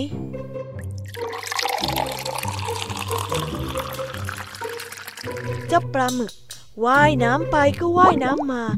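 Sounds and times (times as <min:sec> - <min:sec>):
speech: 0:00.0 - 0:00.3, 0:05.7 - 0:08.7
soft music with low sustained tones: 0:00.0 - 0:08.7
seawater pouring into a glass jar: 0:00.8 - 0:05.9.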